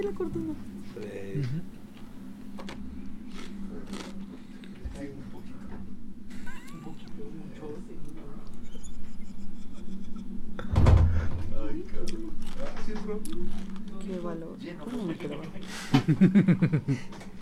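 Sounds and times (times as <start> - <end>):
speech: 0.0 - 1.8, 13.1 - 17.3
laughter: 6.3 - 7.6, 8.5 - 10.4, 15.0 - 17.3
door opening with creaking thud: 10.6 - 11.6.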